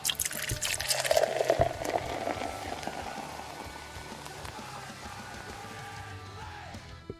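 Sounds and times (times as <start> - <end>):
fizzy drink pouring into a glass: 0.0 - 4.6.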